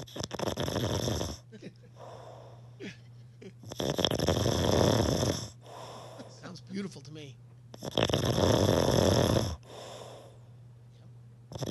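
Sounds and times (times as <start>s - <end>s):
speech: 0.0s - 0.6s, 6.9s - 8.1s
man snoring loudly in his sleep: 0.0s - 2.7s, 3.6s - 6.3s, 7.8s - 10.4s
faint steady hum: 0.0s - 11.6s.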